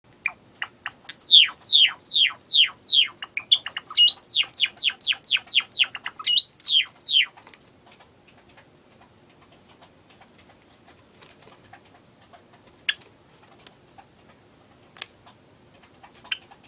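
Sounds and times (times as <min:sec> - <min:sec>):
Java sparrow singing and cooing: 0:00.2 - 0:07.4.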